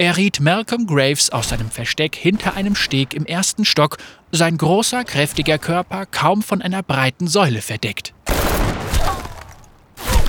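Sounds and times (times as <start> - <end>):
speech: 0.0 - 8.6
loud bursts of gunfire: 8.3 - 9.3.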